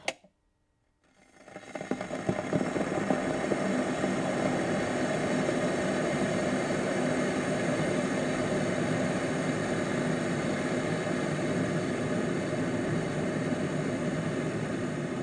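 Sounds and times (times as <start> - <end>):
kettle boiling: 0.0 - 0.2, 1.1 - 15.2.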